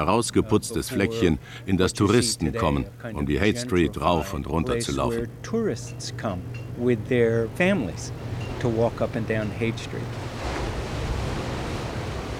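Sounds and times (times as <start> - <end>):
speech: 0.0 - 10.3
ocean surf breaking on a sandy beach at Big Sur, California: 8.0 - 12.3.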